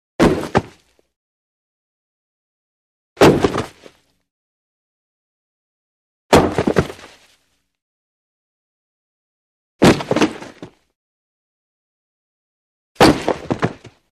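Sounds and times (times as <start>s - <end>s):
heavy low body fall on wood: 0.2s - 0.8s, 3.2s - 3.9s, 6.3s - 7.2s, 9.8s - 10.8s, 13.0s - 14.0s.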